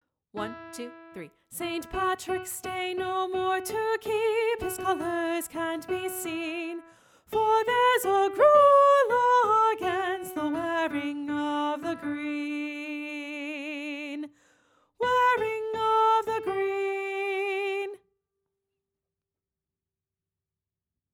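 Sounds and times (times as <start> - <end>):
soprano singing a folk song: 0.4 - 14.4, 15.0 - 18.0.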